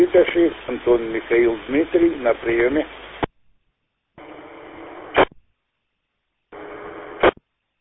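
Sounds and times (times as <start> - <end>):
speech: 0.0 - 3.1
unmodulated radio carrier hiss: 0.0 - 3.3, 4.2 - 5.4, 6.6 - 7.4.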